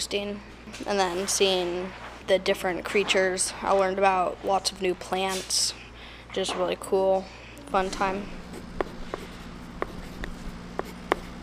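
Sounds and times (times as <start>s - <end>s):
speech: 0.0s - 8.6s
low steady room hum: 0.0s - 11.4s
colored pencil scratching across a poster: 7.8s - 11.4s.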